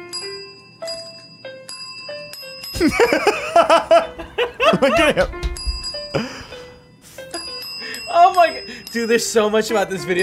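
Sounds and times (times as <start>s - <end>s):
small bell dinging: 0.0s - 3.0s, 5.4s - 6.2s, 7.4s - 10.2s
speech: 2.8s - 4.1s, 4.7s - 5.4s, 8.9s - 10.2s
people laughing: 2.8s - 5.4s.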